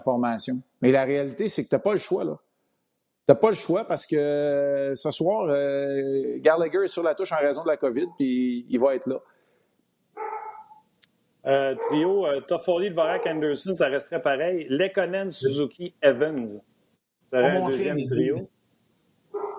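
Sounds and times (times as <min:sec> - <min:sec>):
speech: 0:00.0 - 0:02.5, 0:03.3 - 0:09.3, 0:11.4 - 0:16.7, 0:17.3 - 0:18.6
household dog barking: 0:10.2 - 0:10.8, 0:11.7 - 0:12.2, 0:13.1 - 0:13.4, 0:19.3 - 0:19.5.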